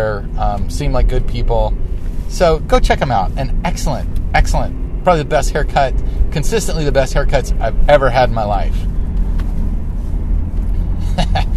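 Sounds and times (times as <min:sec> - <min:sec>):
road and engine noise inside a moving car: 0:00.0 - 0:11.5
speech: 0:00.2 - 0:08.9, 0:11.2 - 0:11.5.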